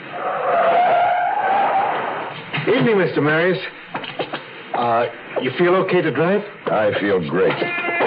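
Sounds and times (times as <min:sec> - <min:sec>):
sports car tires screeching to a stop: 0:00.0 - 0:02.4
speech: 0:02.6 - 0:03.8, 0:04.8 - 0:07.9.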